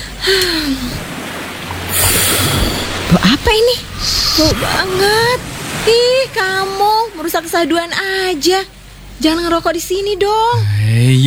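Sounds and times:
breathy sigh: 0.0 - 1.2, 1.8 - 5.6
ocean waves washing onto a beach: 0.0 - 8.8
speech: 0.2 - 1.0, 3.2 - 11.2.

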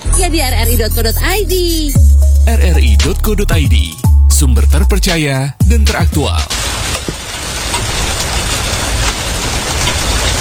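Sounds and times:
speech: 0.2 - 6.6
steady rain pouring: 5.6 - 10.4.

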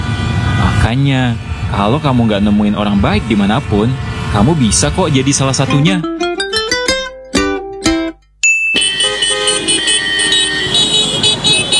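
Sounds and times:
busy noisy street traffic with engines: 0.0 - 11.7
speech: 0.9 - 6.2
sharp car horn blasts: 8.8 - 11.7.

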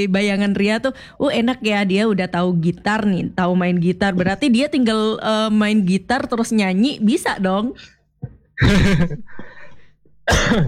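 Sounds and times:
speech: 0.0 - 8.0, 8.6 - 9.5, 10.3 - 10.6
harsh throaty coughs: 8.6 - 10.6.

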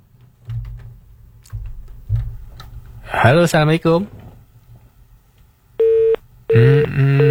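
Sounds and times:
speech: 3.2 - 4.2
telephone busy tone on a call-in line after a dropped connection: 5.8 - 7.2.

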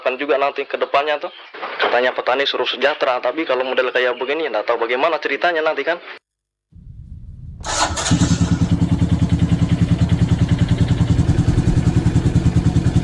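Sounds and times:
speech: 0.1 - 6.2
motorcycle engine being warmed up in the morning: 6.8 - 13.0.

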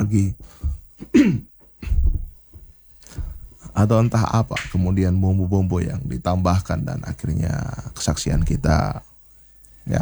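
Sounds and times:
speech: 0.1 - 1.5, 3.8 - 9.1, 9.8 - 10.0
throaty coughs: 1.0 - 2.1.

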